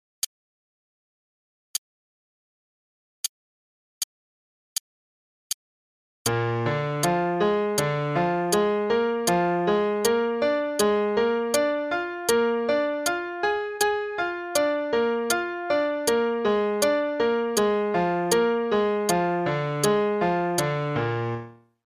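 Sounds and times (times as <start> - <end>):
broken triads to the octave in E flat major: 6.3 - 21.6.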